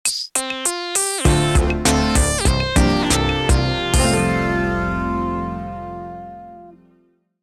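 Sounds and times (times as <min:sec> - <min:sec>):
percussion in an 80s vintage logo jingle: 0:00.0 - 0:04.4
synth in an 80s vintage logo jingle: 0:01.0 - 0:07.1.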